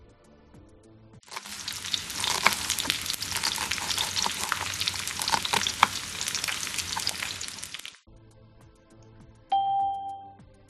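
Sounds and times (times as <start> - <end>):
food sizzling and crackling in a hot pan: 1.3 - 8.1
two-tone doorbell chime: 9.5 - 10.4.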